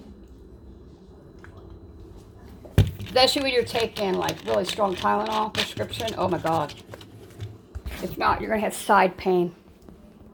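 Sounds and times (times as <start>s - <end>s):
quiet room noise: 0.0s - 9.2s
speech: 3.1s - 6.9s, 8.1s - 9.6s.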